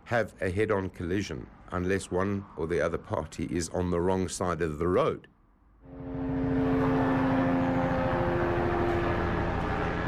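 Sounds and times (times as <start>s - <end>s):
speech: 0.1s - 5.3s
police helicopter droning engine hum: 5.9s - 10.0s.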